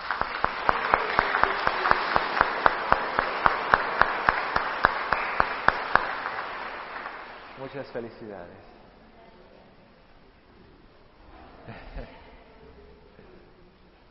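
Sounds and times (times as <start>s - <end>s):
audience applause at a Catholic Mass in church: 0.0s - 8.2s
speech: 7.7s - 8.8s.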